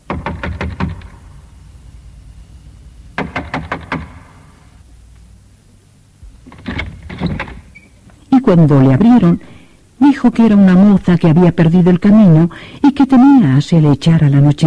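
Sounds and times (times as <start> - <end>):
knocking on a wooden door: 0.0 - 1.3, 3.1 - 4.5
speech: 8.5 - 14.6.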